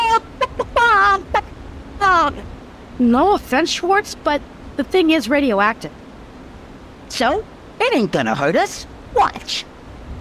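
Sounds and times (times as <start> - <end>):
kids imitating a chicken with clucks and squawks: 0.0 - 1.5
speech: 2.3 - 6.0, 7.1 - 9.7.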